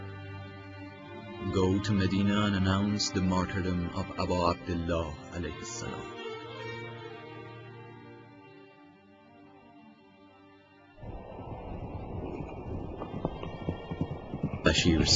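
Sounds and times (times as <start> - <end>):
speech: 1.4 - 6.3, 14.7 - 15.1
horse galloping: 11.0 - 15.1
rushing wind-like noise: 11.0 - 15.1
sustained droning tone: 11.0 - 15.1.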